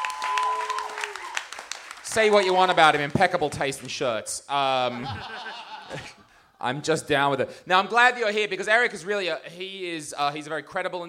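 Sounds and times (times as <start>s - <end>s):
audience applause with clapping from many hands: 0.0s - 3.9s
speech: 2.1s - 11.0s
laughter: 4.7s - 6.3s.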